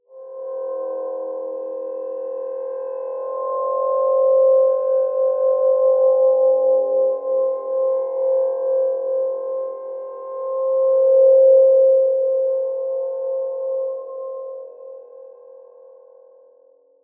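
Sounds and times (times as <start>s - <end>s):
soft healing soundscape: 0.1s - 16.6s.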